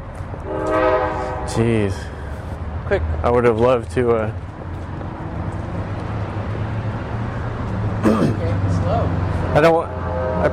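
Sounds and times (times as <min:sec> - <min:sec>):
low rumble of a passing train: 0:00.0 - 0:10.5
train horn: 0:00.4 - 0:01.7, 0:09.9 - 0:10.5
speech: 0:01.6 - 0:02.2, 0:02.9 - 0:04.5, 0:09.0 - 0:10.5.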